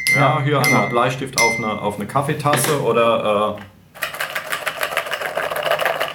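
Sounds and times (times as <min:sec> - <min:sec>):
speech: 0:00.2 - 0:03.7
cereal bowl with egg biscuits being rattled: 0:04.0 - 0:06.1.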